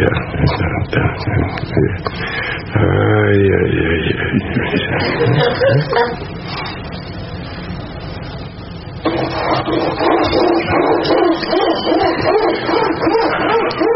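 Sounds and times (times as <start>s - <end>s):
laughter: 0.1s - 2.9s, 3.5s - 6.4s, 9.7s - 13.9s
speech: 4.3s - 6.7s
dog barking: 9.1s - 13.9s.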